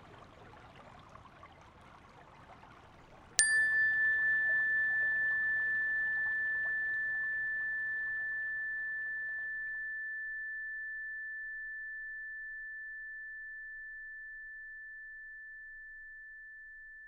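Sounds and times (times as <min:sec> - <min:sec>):
meditation chime ringing: 0:03.4 - 0:17.0.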